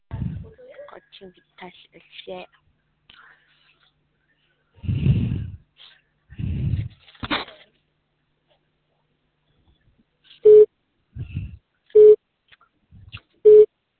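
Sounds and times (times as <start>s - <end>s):
speech: 1.2s - 2.6s
low breathy noises: 3.1s - 7.2s, 11.2s - 11.6s
telephone busy signal: 10.5s - 10.7s, 12.0s - 12.2s, 13.5s - 13.7s.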